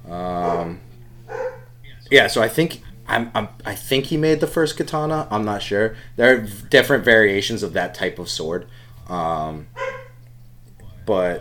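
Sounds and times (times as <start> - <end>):
low steady hum: 0.0 - 11.4
dog barking: 0.4 - 1.7, 9.8 - 10.2
speech: 2.1 - 9.8, 11.1 - 11.4.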